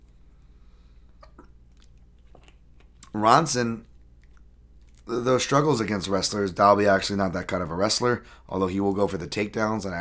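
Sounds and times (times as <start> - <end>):
low steady hum: 0.0 - 9.9
person sipping water: 0.1 - 3.2, 3.8 - 5.1
speech: 3.2 - 3.9, 5.1 - 9.9.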